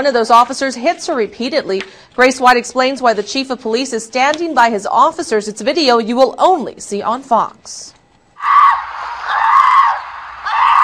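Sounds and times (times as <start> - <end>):
speech: 0.0 - 8.8
woman screaming loudly in video footage: 8.4 - 10.8.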